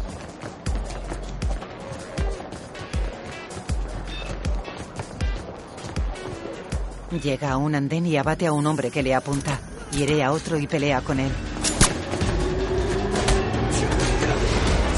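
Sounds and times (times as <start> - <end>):
running footsteps descending a staircase: 0.0 - 7.0
continuous noisy background: 0.0 - 14.9
speech: 7.1 - 11.5.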